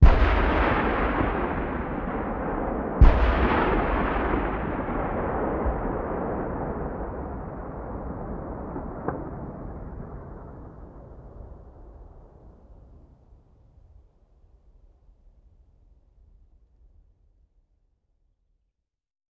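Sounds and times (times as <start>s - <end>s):
tank cannon firing: 0.0s - 10.8s.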